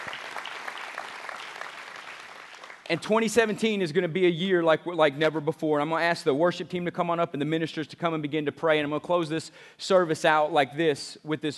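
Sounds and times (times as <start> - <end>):
audience applauding: 0.0 - 3.0
speech: 2.9 - 11.5.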